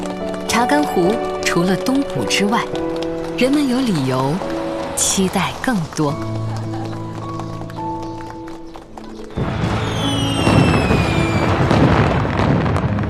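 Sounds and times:
soft tonal music: 0.0 - 11.7
speech: 0.6 - 6.5
crackling firework bursts over the Chagan flower grassland at nightfall: 9.3 - 13.0
whistling firework rockets over the Chagan flower grassland: 9.3 - 13.0.

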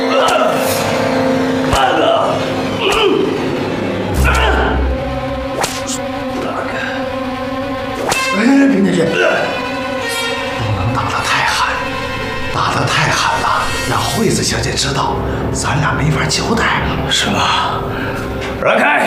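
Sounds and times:
steady droning tonal background: 0.0 - 18.6
whip lashes: 5.6 - 6.0, 8.0 - 8.3.

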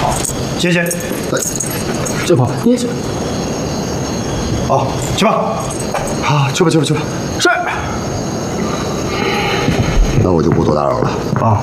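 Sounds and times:
bunch of keys jangling as handed over to an officer: 0.0 - 2.4, 5.0 - 6.3
voices murmuring: 0.0 - 11.6
speech: 0.2 - 3.3, 4.7 - 8.0, 10.2 - 11.6.

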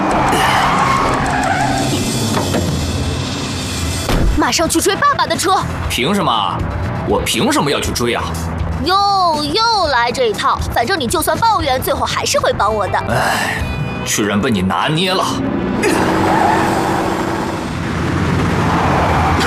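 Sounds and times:
truck tires skidding while drifting: 0.0 - 3.7, 15.2 - 19.4
truck engine roaring while drifting: 0.0 - 19.4.

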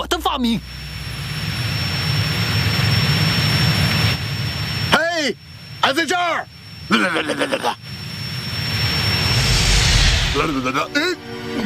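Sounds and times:
speech: 0.4 - 0.8, 5.2 - 7.9, 10.4 - 11.6
jet-engine roar from an airplane in flight: 0.6 - 4.9, 7.9 - 11.0.

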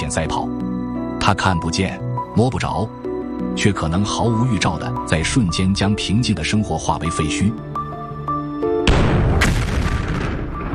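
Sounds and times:
speech: 0.0 - 0.6, 1.3 - 3.0, 3.6 - 7.7
soft tonal music: 0.0 - 8.9
loud gas explosion: 8.9 - 10.7.

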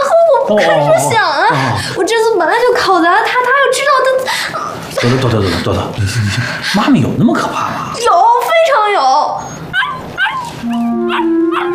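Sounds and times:
speech: 0.5 - 9.6
dog barking: 9.7 - 11.7.

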